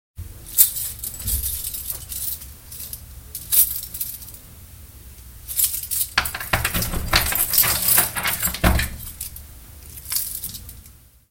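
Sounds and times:
keys unlocking a lock: 0.6s - 2.9s, 5.6s - 10.8s.

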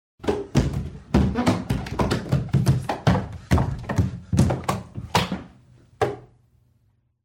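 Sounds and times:
body falling downstairs: 0.2s - 5.6s.

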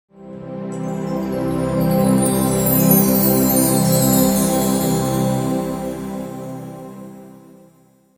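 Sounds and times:
synthesizer pad music transition: 0.1s - 7.7s
bell tree: 0.8s - 6.9s.

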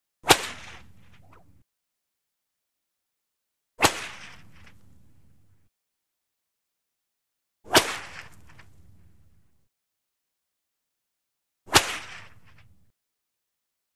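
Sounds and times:
single reverberant whip swish and crack: 0.2s - 1.6s, 3.8s - 5.0s, 7.6s - 9.1s, 11.7s - 12.9s.

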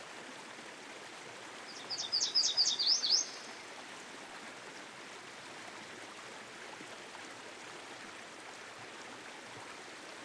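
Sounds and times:
soft steady hiss beside a stream: 0.0s - 10.2s
Yellow Warbler song fragment: 1.7s - 3.6s.

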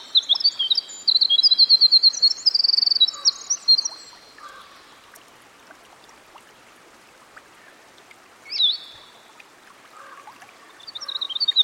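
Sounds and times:
winter wren song by a stream: 0.0s - 4.9s, 8.5s - 9.2s, 10.7s - 11.6s.

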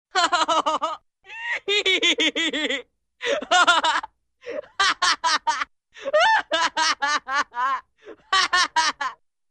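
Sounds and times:
funny boy laughing heartily: 0.1s - 9.2s.

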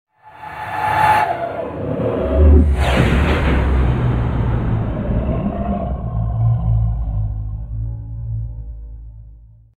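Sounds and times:
eerie double tonal whoosh: 0.2s - 9.6s
growl spark: 2.2s - 7.8s.

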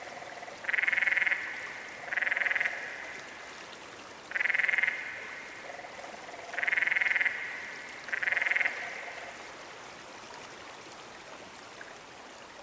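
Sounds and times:
softer lower frog trills: 0.0s - 3.3s, 4.3s - 9.3s
Canyon frog calling with pulsed rattling trills: 0.6s - 3.0s, 4.3s - 9.1s.

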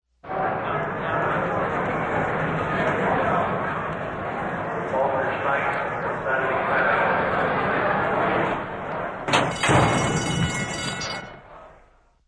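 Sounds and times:
horse race crowd: 0.1s - 12.1s
horse race starting gate: 0.3s - 11.8s.

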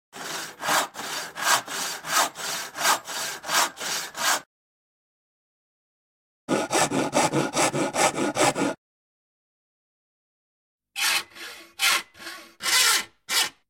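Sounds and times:
sawing: 0.1s - 4.5s, 6.5s - 8.8s, 11.0s - 13.6s.

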